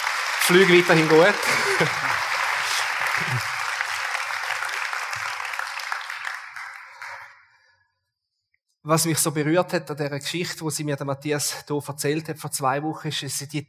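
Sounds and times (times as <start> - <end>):
audience applause: 0.0 - 7.4
speech: 0.5 - 2.2, 3.2 - 3.5, 8.9 - 13.6
laughter: 1.0 - 3.7.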